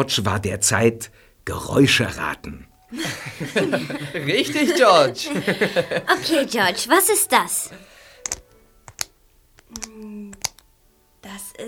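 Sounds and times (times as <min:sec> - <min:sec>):
speech: 0:00.0 - 0:08.4, 0:11.2 - 0:11.6
laughter: 0:02.9 - 0:06.9
handbag clasp snapped open and shut: 0:08.2 - 0:10.7.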